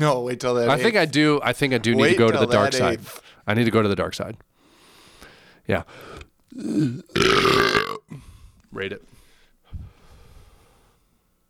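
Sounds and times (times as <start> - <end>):
speech: 0.0 - 4.5, 5.6 - 9.1
person burping: 6.5 - 8.2.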